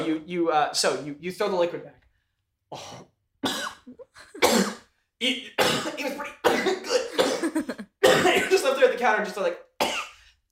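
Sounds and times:
speech: 0.1 - 2.0, 2.7 - 9.9
harsh coughs with throaty catches: 2.7 - 4.9, 5.6 - 8.7, 9.8 - 10.2.

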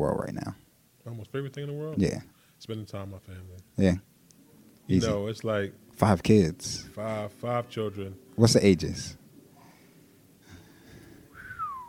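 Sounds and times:
speech: 0.0 - 0.6, 1.3 - 4.1, 4.9 - 9.2
person whistling softly: 11.3 - 11.8.

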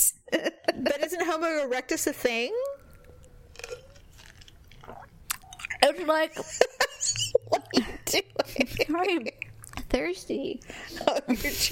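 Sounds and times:
low hum: 0.0 - 11.7
speech: 1.4 - 2.6, 5.8 - 9.4, 10.0 - 11.7
crunchy chewing of ice: 2.8 - 5.8.

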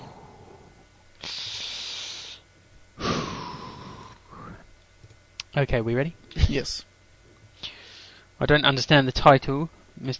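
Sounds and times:
deep breaths: 0.0 - 4.7, 7.6 - 8.4
speech: 5.6 - 6.9, 8.4 - 10.1.

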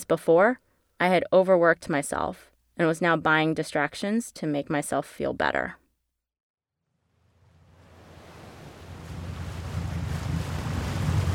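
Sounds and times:
speech: 0.0 - 5.8
boat hull hissing and churning through open ocean waves: 7.4 - 11.3
wind noise: 7.7 - 11.3.

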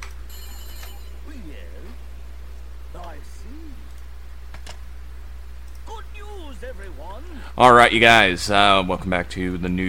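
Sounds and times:
low hum: 0.0 - 9.8
telephone ringing with electronic tone: 0.3 - 1.4
speech: 3.0 - 3.9, 5.9 - 9.8.

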